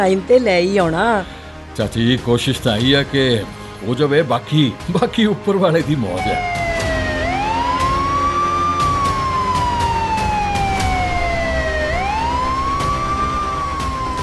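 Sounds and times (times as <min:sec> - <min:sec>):
speech: 0:00.0 - 0:06.7
wailing sirens on vehicles speeding toward a raid: 0:06.1 - 0:14.2.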